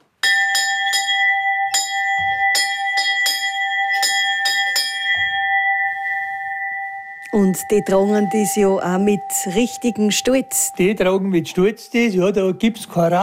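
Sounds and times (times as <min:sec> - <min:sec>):
large alpine cattle drive cowbell swung and rung: 0:00.2 - 0:13.2
speech: 0:07.4 - 0:13.2.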